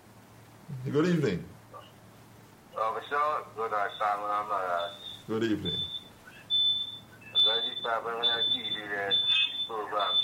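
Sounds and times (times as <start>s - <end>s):
speech: 0.8s - 1.5s, 3.1s - 5.9s, 7.5s - 10.2s
television voice talking through a phone line: 2.7s - 6.6s, 7.2s - 10.2s
steady high-pitched tone whining: 3.7s - 10.2s.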